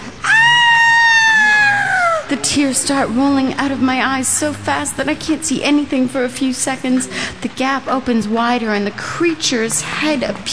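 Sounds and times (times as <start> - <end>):
loud high-pitched scream: 0.2 - 2.3
speech: 2.4 - 10.5.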